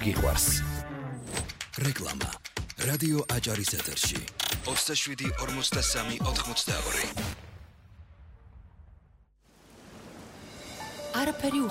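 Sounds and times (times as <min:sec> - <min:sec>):
speech: 0:00.0 - 0:00.9, 0:01.8 - 0:07.5, 0:11.2 - 0:11.7
rain shower: 0:09.4 - 0:11.7.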